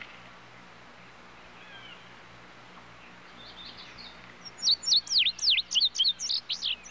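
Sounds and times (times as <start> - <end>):
other birds in background: 1.4 - 6.8
tudigo giving a rapid string of high slurred whistles: 4.4 - 6.8.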